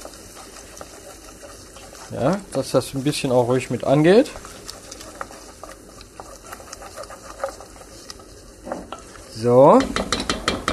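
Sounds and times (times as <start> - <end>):
food being stirred while cooking: 0.0 - 10.7
speech: 2.1 - 4.5, 9.4 - 10.1.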